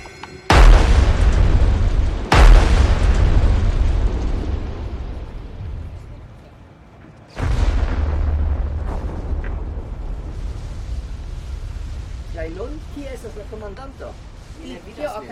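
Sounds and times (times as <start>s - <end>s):
powerful cannon blasts with long rumbling decay: 0.5s - 6.2s, 7.3s - 15.3s
faint voices: 5.1s - 7.4s.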